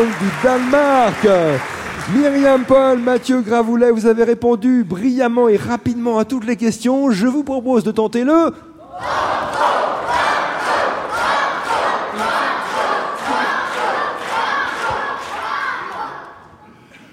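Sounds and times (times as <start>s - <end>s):
speech: 0.0s - 9.2s
large quiz show audience chanting in unison: 8.8s - 16.5s.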